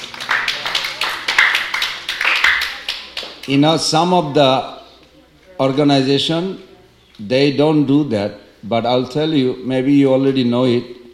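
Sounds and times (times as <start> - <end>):
small group clapping for a child: 0.0 - 3.8
speech: 3.5 - 4.8, 5.6 - 11.0.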